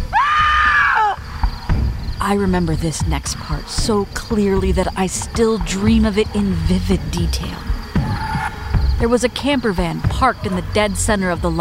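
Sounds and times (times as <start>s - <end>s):
person screaming in terror in a parking lot on a cold night: 0.0s - 1.2s
low rumbling background: 1.2s - 11.5s
speech: 2.2s - 7.8s, 9.0s - 11.5s.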